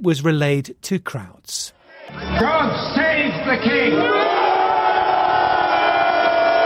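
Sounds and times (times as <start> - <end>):
speech: 0.0 - 4.4
protesters chanting slogans at an anti-monarchy demonstration in London: 1.8 - 2.4, 3.6 - 6.6.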